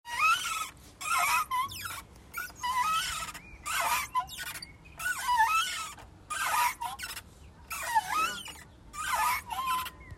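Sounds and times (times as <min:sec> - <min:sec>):
squeaking swing: 0:00.0 - 0:10.1.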